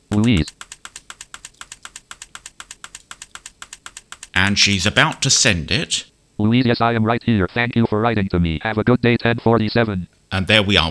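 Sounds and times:
typing a message on a keyboard: 0.0s - 5.2s
speech: 0.2s - 0.6s, 4.5s - 10.8s.

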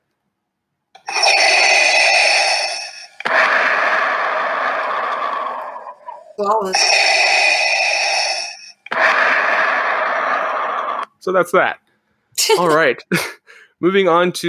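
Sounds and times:
mechanical respirator breathing with raspy hissing inhales and exhales: 1.0s - 11.0s
speech: 6.4s - 7.2s, 11.2s - 11.8s, 12.5s - 14.4s.

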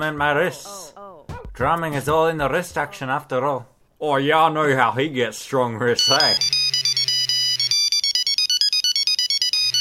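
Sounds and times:
speech: 0.0s - 1.0s, 1.6s - 6.5s
loud electronic telephone ringtone: 6.0s - 9.7s.

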